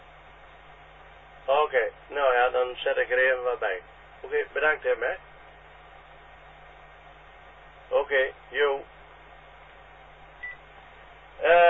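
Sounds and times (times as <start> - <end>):
speech: 1.7 - 5.3, 7.9 - 8.9, 11.4 - 11.6
thin narrowband phone-line hum: 9.0 - 11.6
loud electronic telephone beep: 10.4 - 10.6.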